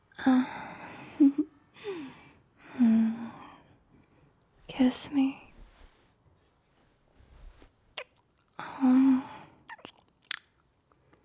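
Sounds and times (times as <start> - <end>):
breathy exhalations and sighs into a microphone: 0.0 - 4.5, 8.4 - 9.7
speech: 4.8 - 5.4.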